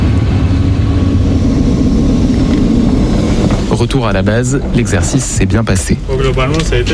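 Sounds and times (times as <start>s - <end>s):
military aircraft engines roaring in formation flight: 0.0s - 6.9s
speech: 3.8s - 6.9s.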